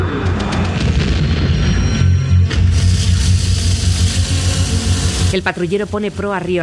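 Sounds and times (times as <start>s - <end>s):
deep explosion booms from a wartime attack on a river bridge: 0.1s - 5.3s
sharp firecracker-like explosion blasts: 0.2s - 5.6s
speech: 5.3s - 6.6s.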